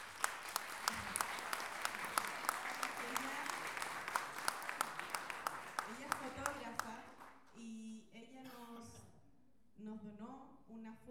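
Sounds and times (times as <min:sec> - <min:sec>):
audience clapping at a book launch event: 0:00.0 - 0:07.6.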